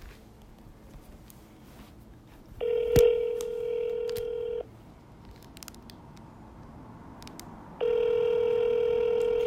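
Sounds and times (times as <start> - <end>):
ringback tone of an unanswered phone call: 2.6 - 4.7, 7.8 - 9.4.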